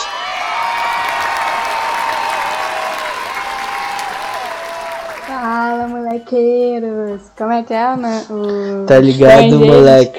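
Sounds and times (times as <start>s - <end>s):
crowd whoops and cheers: 0.0s - 5.4s
crowd applause: 0.0s - 6.0s
speech: 5.8s - 10.1s.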